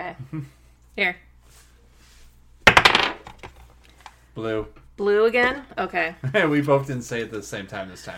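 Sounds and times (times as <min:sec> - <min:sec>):
speech: 0:00.1 - 0:01.6, 0:04.4 - 0:08.1
dice rolling across a hard surface during a board game: 0:02.7 - 0:03.6.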